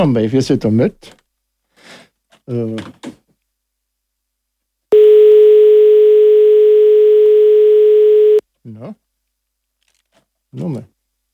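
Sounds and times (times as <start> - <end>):
speech: 0.0 - 1.2, 2.5 - 3.2, 8.7 - 9.0, 10.5 - 10.9
telephone line tone of an incoming phone call: 4.9 - 8.4.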